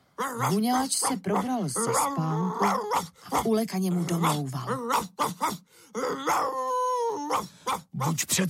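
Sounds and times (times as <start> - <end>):
dog barking: 0.2 - 5.6, 7.2 - 8.2
dog howling: 0.2 - 8.2
speech: 0.2 - 8.4.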